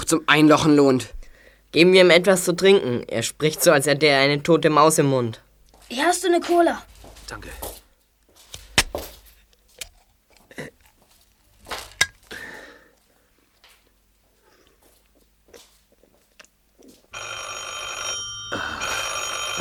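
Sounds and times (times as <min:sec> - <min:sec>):
speech: 0:00.1 - 0:07.8
telephone ringing: 0:17.1 - 0:19.5.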